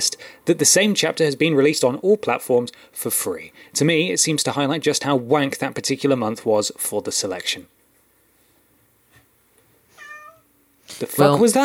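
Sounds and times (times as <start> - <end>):
speech: 0.0 - 7.8, 10.9 - 11.6
cat meowing: 10.0 - 10.5.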